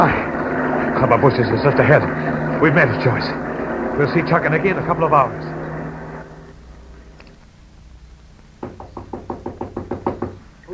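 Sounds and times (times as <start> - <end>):
speech: 1.1 - 5.6
knocking on a door: 8.6 - 10.4.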